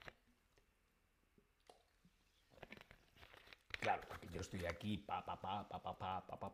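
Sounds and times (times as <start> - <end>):
small wet mouth clicks while drinking water: 1.6 - 2.0
speech: 3.9 - 6.5.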